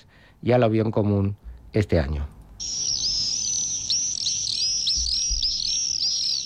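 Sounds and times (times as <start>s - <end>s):
speech: 0.0s - 2.8s
adult common swifts screaming: 2.6s - 6.4s.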